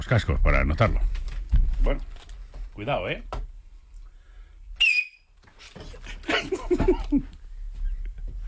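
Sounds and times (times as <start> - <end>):
speech: 0.0 - 1.2, 1.8 - 2.1, 2.8 - 3.4, 6.4 - 7.4
man whistling into a microphone: 4.8 - 5.3
laughter: 5.9 - 7.3.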